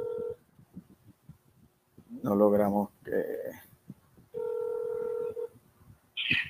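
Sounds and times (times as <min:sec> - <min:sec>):
phone call electronic ringing tone buzz: 0:00.0 - 0:00.4, 0:04.3 - 0:05.5
faint noise: 0:00.0 - 0:06.4
speech: 0:02.2 - 0:03.7.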